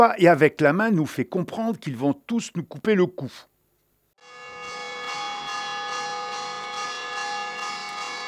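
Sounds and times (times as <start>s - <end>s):
speech: 0.0s - 3.5s
alarm bell ringing: 4.2s - 8.2s.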